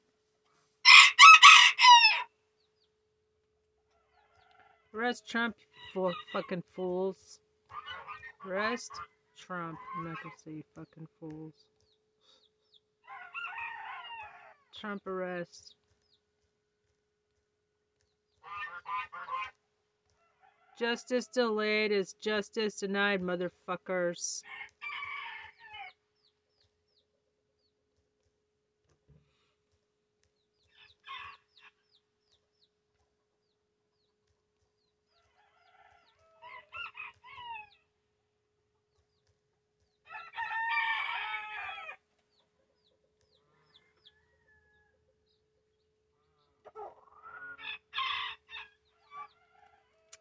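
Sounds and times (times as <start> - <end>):
chicken crowing and clucking: 0.8 - 2.4, 3.9 - 5.0, 13.0 - 14.7, 18.4 - 20.8, 24.4 - 26.0, 30.6 - 31.8, 34.8 - 37.9, 40.0 - 45.2, 46.4 - 50.1
speech: 4.9 - 7.4, 8.4 - 11.7, 14.8 - 15.8, 20.8 - 24.7.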